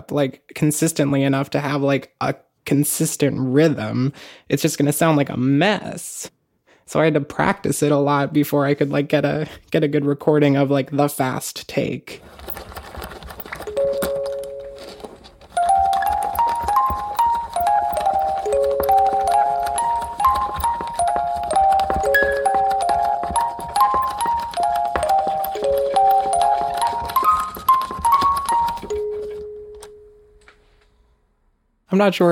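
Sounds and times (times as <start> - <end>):
speech: 0.0 - 12.8, 31.9 - 32.3
music box melody: 13.7 - 30.6.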